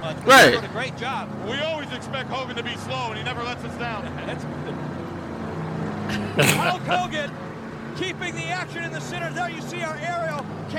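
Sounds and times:
noisy crowded background: 0.0 - 1.4, 6.1 - 8.0
tethered monster truck engine rumbling with a low throaty drone: 0.0 - 10.7
speech: 0.1 - 5.0, 6.1 - 7.4, 8.0 - 10.7
laughter: 6.0 - 7.3.

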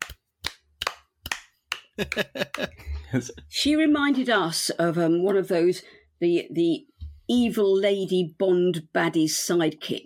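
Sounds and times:
hands clapping along to a song: 0.0 - 2.8
laughter: 2.0 - 3.4
speech: 2.0 - 10.0.

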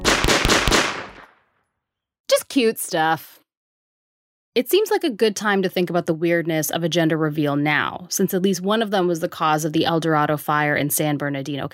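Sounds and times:
gunshots fired into the sky outdoors at a gender reveal party: 0.0 - 1.4
speech: 2.5 - 3.4, 4.6 - 11.7.

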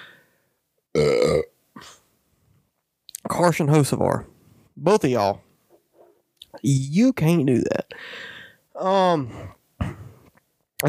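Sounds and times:
person burping: 0.9 - 2.0
speech: 3.4 - 5.4, 6.6 - 9.6.

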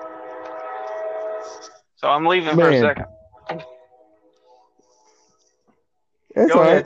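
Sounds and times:
passing train horn: 0.0 - 2.7
speech: 1.4 - 3.7, 6.4 - 6.8.

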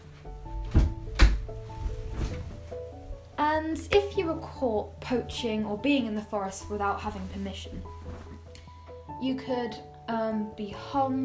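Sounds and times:
wooden door pushed shut: 0.6 - 1.6
speech: 3.6 - 8.0, 9.2 - 11.2.

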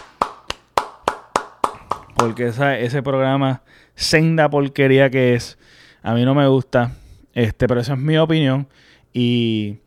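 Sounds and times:
hands clapping: 0.0 - 2.6
speech: 2.2 - 9.8.

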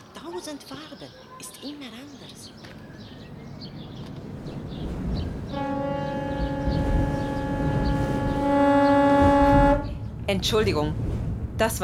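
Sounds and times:
speech: 0.3 - 3.0, 10.3 - 11.8
ship horn blast on the Rhine: 5.5 - 10.1.

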